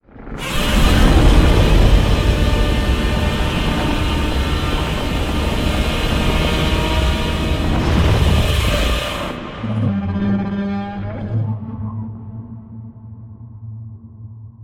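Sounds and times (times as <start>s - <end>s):
giant monster roar: 0.4s - 11.4s.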